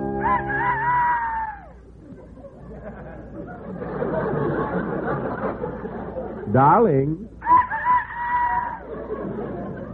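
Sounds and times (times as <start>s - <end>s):
rooster crowing: 0.2s - 1.8s, 7.4s - 8.9s
laughter: 0.2s - 6.5s, 7.4s - 9.9s
low murmur: 0.2s - 9.9s
speech: 6.6s - 7.3s.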